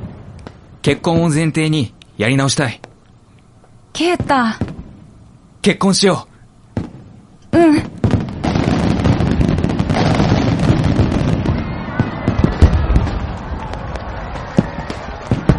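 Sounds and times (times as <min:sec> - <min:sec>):
fireworks exploding: 0:00.0 - 0:02.0, 0:04.0 - 0:05.3, 0:06.7 - 0:15.5
speech: 0:00.8 - 0:02.9, 0:04.0 - 0:04.6, 0:05.6 - 0:06.3.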